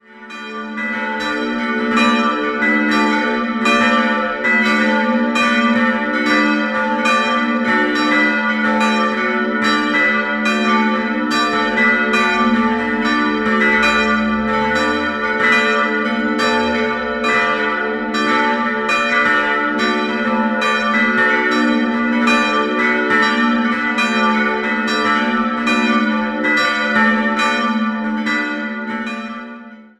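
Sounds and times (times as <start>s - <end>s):
bells ringing: 0.2s - 29.7s.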